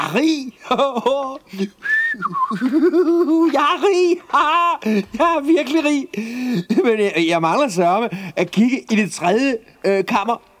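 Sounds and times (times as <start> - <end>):
laughter: 0.0 - 7.0
speech: 0.1 - 10.5
soldier whistling cheerfully: 1.8 - 2.8.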